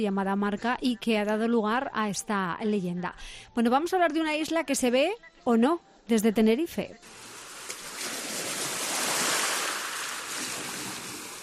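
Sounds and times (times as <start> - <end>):
speech: 0.0 - 7.2
rough sea waves crashing: 7.1 - 11.4.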